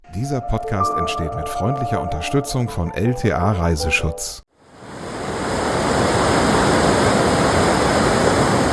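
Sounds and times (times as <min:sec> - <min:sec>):
speech: 0:00.2 - 0:04.4
water rushing and splashing: 0:04.6 - 0:08.7.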